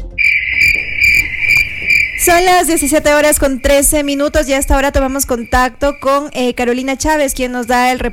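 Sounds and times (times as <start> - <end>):
loud cricket chirping in a rhythmic trill: 0.2 - 8.1
speech: 2.3 - 8.1.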